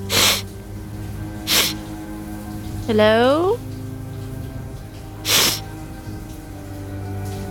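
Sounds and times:
steady hum of running water: 0.0 - 7.5
person sniffling: 0.1 - 0.4, 1.5 - 1.8, 5.3 - 5.6
person calling out questioningly: 2.9 - 3.6
speech: 2.9 - 3.7.

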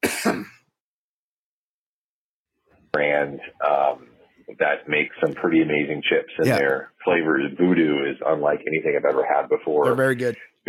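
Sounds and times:
person coughing harshly: 0.0 - 0.6
speech: 2.9 - 10.6.

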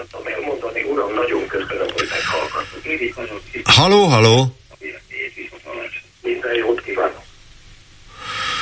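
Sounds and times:
speech: 0.0 - 4.6
caller's radio playing loudly down a phone line: 0.0 - 7.3.

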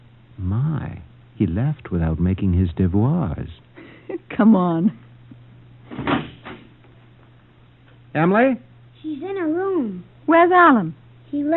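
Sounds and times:
low steady hum: 0.0 - 11.5
speech: 0.4 - 3.7, 4.3 - 5.0, 8.2 - 11.5
front door closing with a muffled thud: 5.9 - 6.7.

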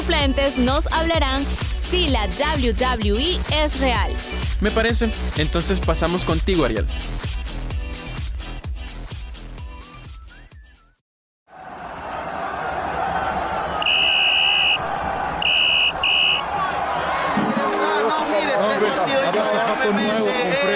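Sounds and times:
music: 0.0 - 11.0, 17.3 - 20.7
speech: 0.1 - 7.3
loud stadium crowd roar: 11.5 - 20.7
referee's whistle blasts: 13.8 - 14.8, 15.4 - 16.5.

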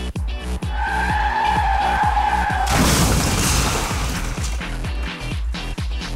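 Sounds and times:
car tires screeching in a sustained skid: 0.0 - 4.3
crashing burst of broken debris: 2.6 - 5.0.

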